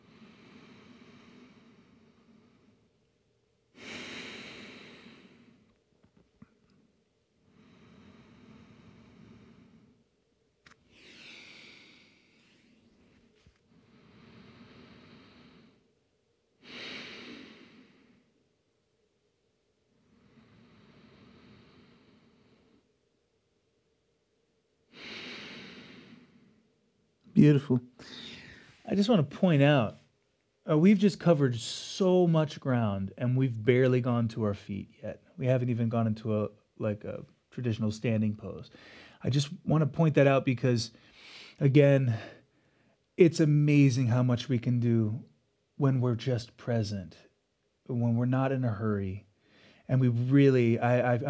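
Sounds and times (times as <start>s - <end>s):
slow deep breathing: 0.0s - 3.1s, 3.7s - 5.8s, 6.4s - 15.9s, 16.6s - 18.4s, 19.9s - 22.9s, 24.9s - 26.7s, 27.9s - 29.2s, 38.7s - 39.3s, 40.9s - 43.0s, 49.4s - 51.1s
faint hiss: 0.0s - 51.2s
speech: 27.4s - 28.2s, 28.9s - 30.0s, 30.7s - 42.4s, 43.2s - 47.3s, 47.9s - 49.3s, 49.9s - 51.2s.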